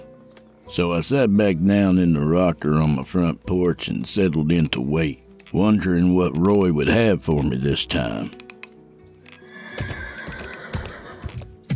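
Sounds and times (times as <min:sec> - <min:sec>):
speech: 0:00.7 - 0:08.4
horse hooves clip-clopping on hard ground: 0:09.3 - 0:11.7
horses neighing with a loud drawn-out whinny: 0:09.4 - 0:11.5.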